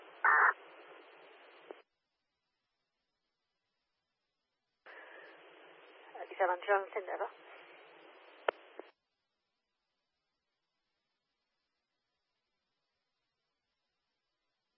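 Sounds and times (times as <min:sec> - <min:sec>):
hissy band-limited two-way radio transmission: 0:00.0 - 0:01.8, 0:04.9 - 0:08.9
distorted voice breaking up inside radio static: 0:00.2 - 0:00.6.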